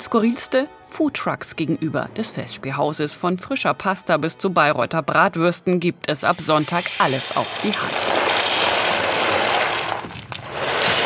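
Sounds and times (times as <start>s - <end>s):
speech: 0.1s - 8.3s
coffee machine in a small mobile café being tested: 6.2s - 11.0s
coffee machine grinding noise: 6.3s - 11.0s.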